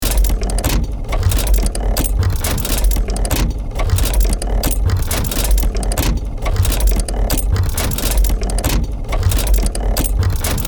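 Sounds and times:
industrial machine mechanical loop: 0:00.0 - 0:10.6.

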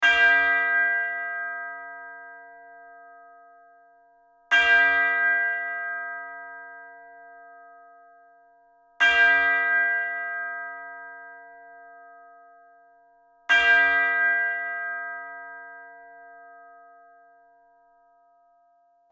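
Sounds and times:
steady church bells ringing: 0:00.0 - 0:03.7, 0:04.5 - 0:08.3, 0:09.0 - 0:12.9, 0:13.5 - 0:17.1.

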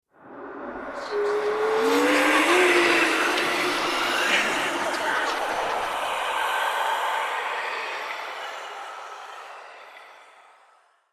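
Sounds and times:
whoosh transition: 0:00.2 - 0:08.9
scary whispers: 0:00.2 - 0:11.1.

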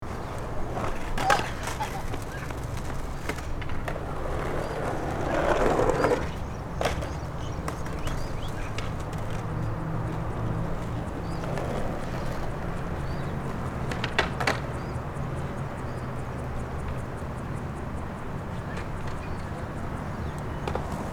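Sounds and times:
suburban park ambience near a skatepark: 0:00.0 - 0:21.1.

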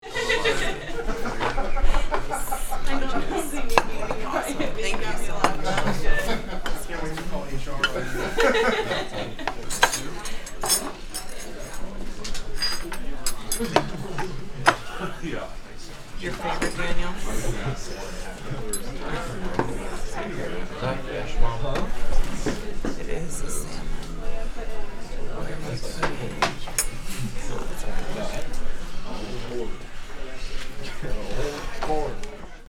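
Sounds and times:
laughter: 0:00.0 - 0:12.4, 0:13.0 - 0:32.6
quiet restaurant ambience with light activity: 0:00.0 - 0:32.6.

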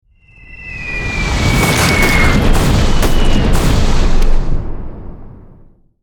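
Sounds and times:
aerial missile strike bombardment explosions: 0:01.3 - 0:05.9.

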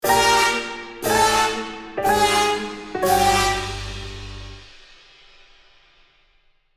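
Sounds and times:
comedy cartoon wah wah wah fail trumpets: 0:00.1 - 0:04.0.

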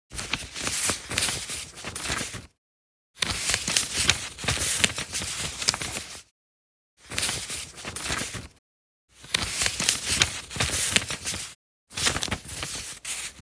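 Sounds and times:
paper shuffling: 0:00.2 - 0:02.5, 0:03.2 - 0:06.2, 0:07.1 - 0:08.5, 0:09.2 - 0:13.4.

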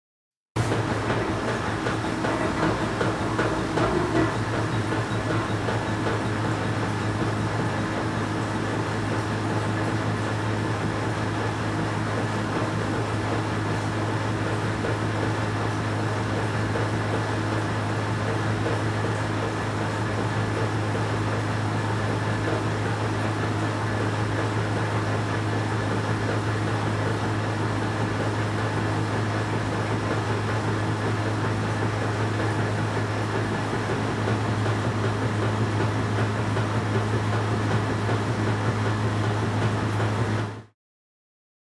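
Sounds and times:
distant washing machine spinning: 0:00.6 - 0:40.7.

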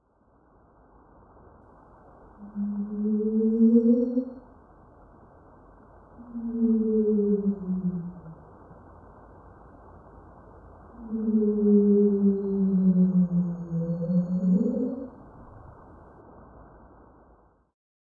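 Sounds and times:
whale call heard underwater: 0:02.4 - 0:04.4, 0:06.2 - 0:08.4, 0:11.0 - 0:15.2.

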